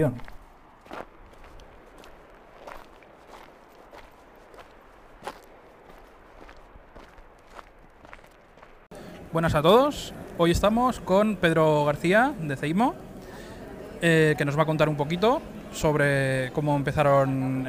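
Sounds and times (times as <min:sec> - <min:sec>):
speech: 0:00.0 - 0:00.3, 0:09.3 - 0:13.1, 0:14.0 - 0:17.6
footsteps crunching on rough ground during a mountain hike: 0:00.0 - 0:08.9
faint outdoor ambience: 0:00.0 - 0:17.6.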